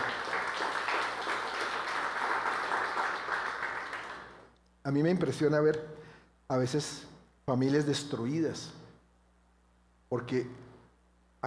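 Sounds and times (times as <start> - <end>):
audience applauding: 0.0 - 4.5
speech: 4.9 - 8.8, 10.1 - 10.6.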